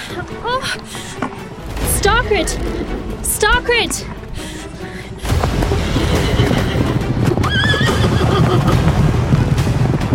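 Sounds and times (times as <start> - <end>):
speech: 0.1 - 1.4, 2.1 - 4.2
galloping hooves of three large horses in a stable hall: 0.8 - 10.1
horse whinnying: 5.7 - 8.9.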